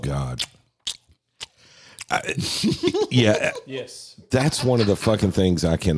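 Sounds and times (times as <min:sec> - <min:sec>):
speech: 0:00.0 - 0:00.5, 0:02.1 - 0:05.9
wet open-mouth chewing: 0:00.4 - 0:02.1.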